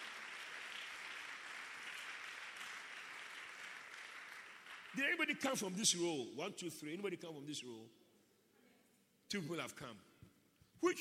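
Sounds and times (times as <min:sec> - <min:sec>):
audience clapping hands: 0:00.0 - 0:05.6
speech: 0:04.9 - 0:08.0, 0:09.3 - 0:10.1, 0:10.8 - 0:10.9.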